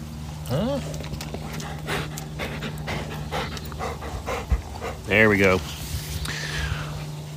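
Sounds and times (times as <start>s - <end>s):
low hum: 0.0s - 7.3s
speech: 0.5s - 1.2s, 5.1s - 5.8s
dog panting: 1.3s - 5.7s.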